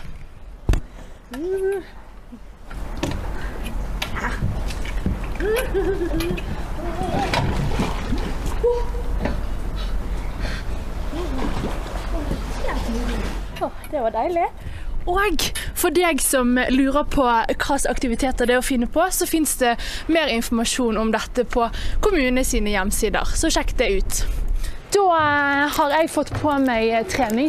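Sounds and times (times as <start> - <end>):
speech: 1.3 - 2.5, 5.4 - 7.6, 12.9 - 27.4
person jumping into the sea splashing water as a winter holiday activity: 2.8 - 13.6.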